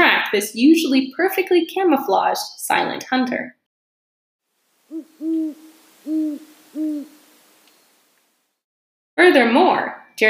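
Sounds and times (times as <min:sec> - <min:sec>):
speech: 0:00.3 - 0:03.6, 0:04.9 - 0:07.2, 0:09.2 - 0:10.2
great horned owl hooting: 0:04.9 - 0:08.1.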